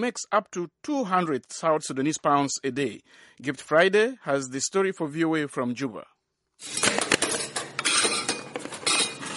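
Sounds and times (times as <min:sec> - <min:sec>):
speech: 0:00.0 - 0:07.2
dishes and cutlery clattering as a woman washes and stacks dishes: 0:06.6 - 0:09.3
knocks and scraping of plates and pots: 0:06.6 - 0:09.3.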